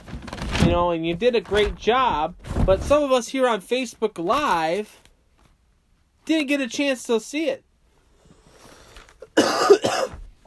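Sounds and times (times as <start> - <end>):
speech: 0.7 - 5.0, 6.3 - 7.7
person coughing: 9.2 - 10.2.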